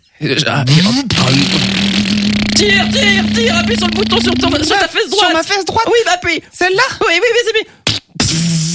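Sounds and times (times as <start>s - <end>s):
speech: 0.2s - 2.0s, 2.6s - 8.7s
voice imitating a motorcycle engine revving: 0.7s - 4.9s.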